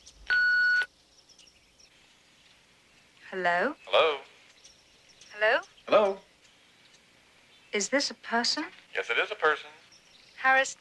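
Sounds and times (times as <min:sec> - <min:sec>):
answering machine electronic beep: 0:00.3 - 0:00.9
speech: 0:03.3 - 0:04.3, 0:05.4 - 0:06.2, 0:07.7 - 0:09.8, 0:10.4 - 0:10.7.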